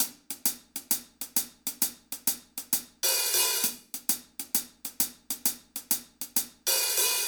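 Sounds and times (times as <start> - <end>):
hi-hat: 0.0 - 7.2.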